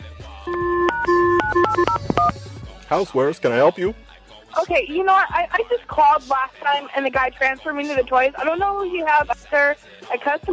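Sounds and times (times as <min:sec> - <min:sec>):
electronic telephone dialing tones: 0:00.5 - 0:02.3
speech: 0:02.9 - 0:10.5.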